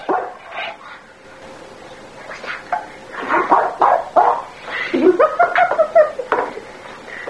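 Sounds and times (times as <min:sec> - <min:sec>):
dog barking in short high yappy bursts: 0:00.0 - 0:00.6, 0:03.3 - 0:04.6
laughter: 0:04.7 - 0:06.7.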